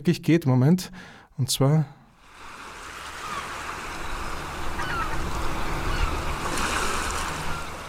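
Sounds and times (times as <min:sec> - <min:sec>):
speech: 0:00.0 - 0:02.0
ocean waves washing onto a shore: 0:02.1 - 0:07.8.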